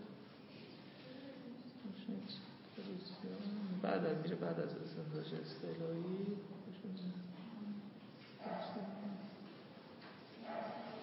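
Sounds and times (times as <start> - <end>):
speech: 2.1 - 7.4, 8.4 - 9.2
faint dog barks: 8.4 - 9.6, 10.3 - 11.0.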